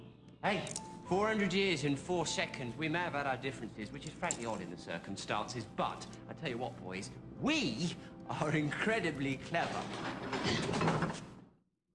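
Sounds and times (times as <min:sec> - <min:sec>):
speech: 0:00.4 - 0:11.3
unlocked door swinging open with creak and rattle: 0:09.5 - 0:11.4.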